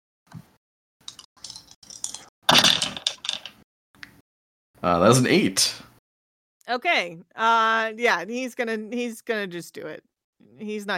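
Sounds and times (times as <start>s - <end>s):
dice rattling and tumbling across a hard surface: 1.4s - 3.6s
speech: 4.8s - 5.9s, 6.7s - 10.9s.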